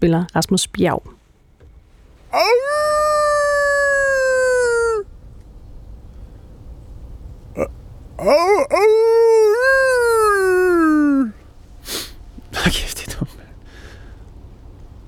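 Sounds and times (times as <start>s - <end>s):
speech: 0.0s - 1.2s, 2.3s - 2.9s, 7.6s - 9.4s
man howling like a wolf in a forest: 2.3s - 5.1s, 7.6s - 11.4s.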